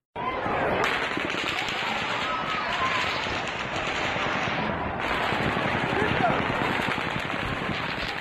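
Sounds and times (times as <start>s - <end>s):
frantic crowd voices: 0.2s - 8.2s
rapid automatic gunfire recorded at a concert: 0.8s - 8.2s.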